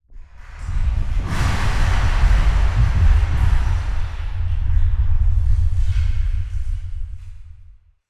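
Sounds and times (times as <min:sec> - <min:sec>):
cave ambience: 0:00.5 - 0:07.7.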